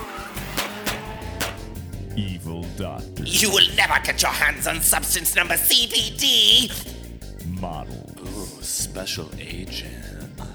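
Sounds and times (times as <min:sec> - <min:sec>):
fast car engine roaring: 0:00.0 - 0:02.0
speech: 0:02.2 - 0:07.0, 0:07.6 - 0:10.2.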